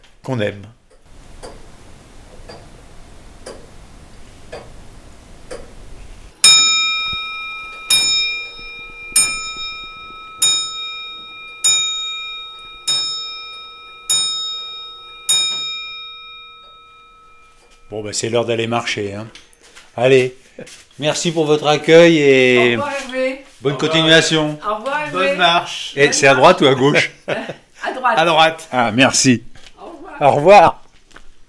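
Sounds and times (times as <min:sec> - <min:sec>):
speech: 0:00.2 - 0:00.8, 0:18.1 - 0:19.4, 0:20.0 - 0:27.4, 0:28.1 - 0:29.5, 0:30.2 - 0:30.8
Comtoise grandfather clock ticking: 0:00.8 - 0:04.8, 0:05.4 - 0:05.8, 0:06.6 - 0:19.5
Comtoise grandfather clock bell striking chimes: 0:06.4 - 0:19.1
laughter: 0:26.0 - 0:27.7.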